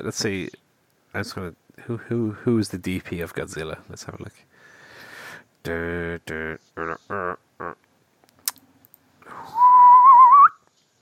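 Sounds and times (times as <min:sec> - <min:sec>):
speech: 0:00.0 - 0:04.7, 0:05.6 - 0:07.8
short hummed or voiced notes: 0:06.3 - 0:07.9
person whistling a brief wavering tune: 0:09.3 - 0:10.6.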